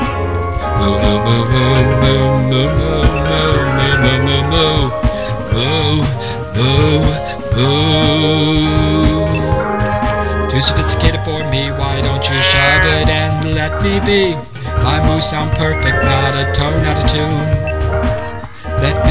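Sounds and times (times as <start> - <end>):
full musical accompaniment: 0.0 - 19.0
voice imitating cows mooing: 1.3 - 5.0, 9.6 - 13.8.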